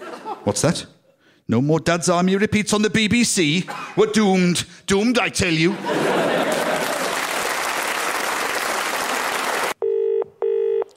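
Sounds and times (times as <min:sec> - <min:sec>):
laughter: 0:00.0 - 0:00.8, 0:05.5 - 0:07.5
speech: 0:00.4 - 0:06.4
loud applause: 0:06.4 - 0:09.8
telephone ringing in short buzzy bursts: 0:09.8 - 0:10.9.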